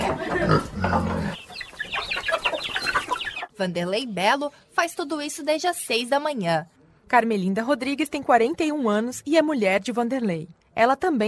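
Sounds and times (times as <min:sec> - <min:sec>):
pigs grunting on a small farm in Novo Horizonte: 0:00.0 - 0:01.5
chickens clucking and squawking on a small farm in Novo Horizonte: 0:00.0 - 0:03.6
speech: 0:03.6 - 0:11.2.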